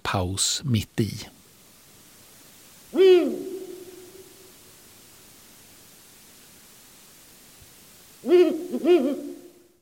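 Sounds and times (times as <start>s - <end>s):
steady hiss: 0.0s - 9.8s
speech: 0.2s - 1.4s
Ural owl hooting: 2.9s - 4.6s, 8.2s - 9.8s.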